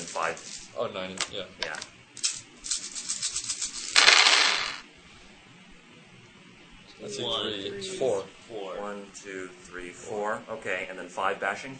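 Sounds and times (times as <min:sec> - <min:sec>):
several dice shaken together: 0:00.0 - 0:04.8
speech: 0:00.2 - 0:01.9, 0:07.0 - 0:11.7.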